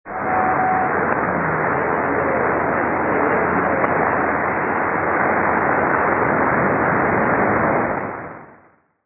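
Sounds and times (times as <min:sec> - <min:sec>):
mystery radio transmission on 6220 kHz: 0:00.1 - 0:07.9.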